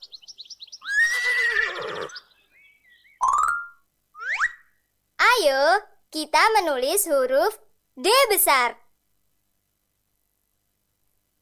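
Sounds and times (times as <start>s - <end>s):
horse whinnying: 0.8s - 2.2s
bright squealing calls: 0.8s - 4.7s
speech: 5.5s - 8.8s.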